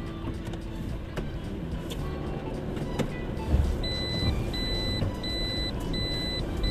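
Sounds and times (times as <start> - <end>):
road and engine rumble inside a moving car: 0.0 - 6.6
short high electronic beeps: 3.9 - 6.6.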